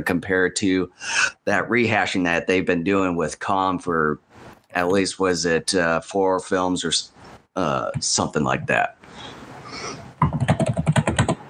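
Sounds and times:
speech: 0.0 - 10.4
typing on a computer keyboard: 10.2 - 11.4.

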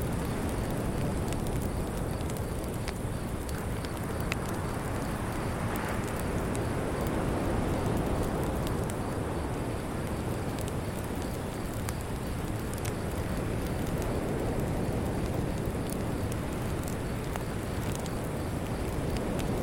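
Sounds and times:
beach campfire crackling and popping: 0.0 - 19.6.

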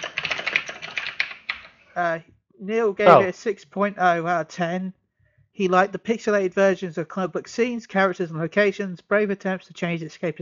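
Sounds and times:
rapid computer keyboard typing with plastic key clicks: 0.0 - 1.8
speech: 2.0 - 5.0, 5.6 - 10.4.

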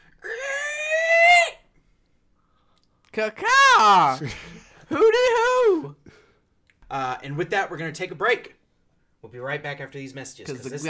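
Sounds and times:
human voice screeching in imitation of a creature: 0.2 - 1.6, 3.4 - 4.3
speech: 3.2 - 6.0, 6.9 - 8.6, 9.2 - 10.8.

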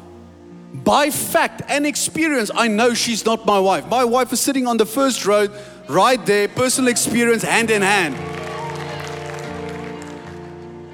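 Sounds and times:
speech: 0.8 - 8.4
audience clapping: 7.2 - 10.9.

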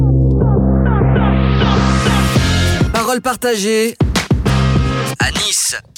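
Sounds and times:
rising synth sweep in a radio jingle: 0.0 - 3.0
pulsing bass in a radio jingle: 0.0 - 3.1, 4.4 - 5.2
layered music in a radio jingle: 0.0 - 5.5
speech: 3.2 - 4.0, 5.2 - 5.9.

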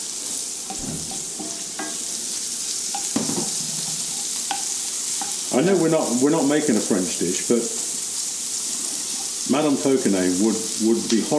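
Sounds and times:
vegetables sweating down in a cooking pan: 0.0 - 11.3
speech: 5.6 - 7.8, 9.5 - 11.3.

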